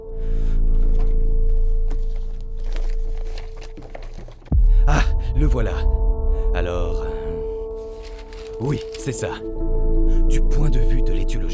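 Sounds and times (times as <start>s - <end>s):
paper sheets rustling and crinkling while someone searches: 0.0s - 4.6s, 7.7s - 9.5s
speech: 5.4s - 6.0s, 6.6s - 7.1s, 8.6s - 11.5s.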